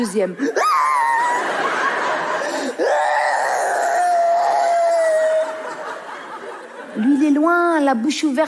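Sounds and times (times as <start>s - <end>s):
speech: 0.0s - 0.9s, 7.0s - 8.4s
woman fake crying with whimpering sobs: 0.4s - 1.4s, 2.5s - 5.8s
laughter: 0.4s - 7.3s.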